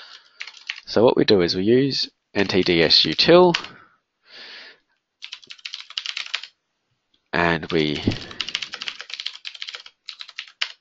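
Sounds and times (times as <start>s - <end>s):
typing commands on a computer keyboard: 0.1s - 0.9s, 2.4s - 3.7s, 5.2s - 6.6s, 7.7s - 10.7s
speech: 0.9s - 3.8s, 7.3s - 8.4s.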